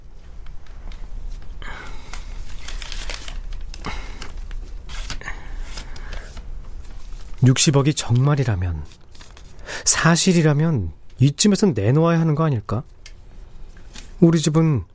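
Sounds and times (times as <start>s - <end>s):
paper struck and handled with taps, rustles and crinkles: 0.4s - 7.4s
speech: 7.4s - 9.0s, 9.9s - 13.0s, 14.2s - 14.9s.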